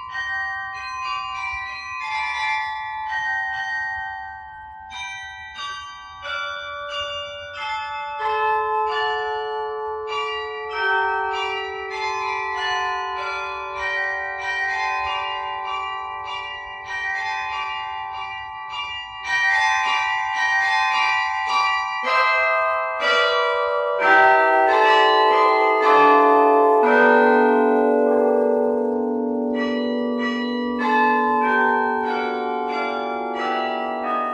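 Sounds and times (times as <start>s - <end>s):
carillon bells playing a traditional Christmas carol: 0.0s - 34.3s.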